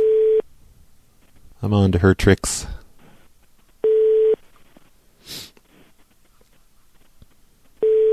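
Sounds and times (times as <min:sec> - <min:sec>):
telephone line electronic ring tone heard through the earpiece: 0:00.0 - 0:00.4, 0:03.8 - 0:04.4, 0:07.8 - 0:08.1
speech: 0:01.6 - 0:02.8.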